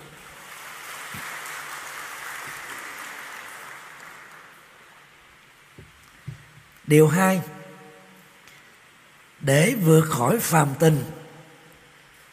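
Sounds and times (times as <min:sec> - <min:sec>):
audience applause: 0:00.0 - 0:05.2
speech: 0:06.9 - 0:07.5, 0:09.5 - 0:11.2.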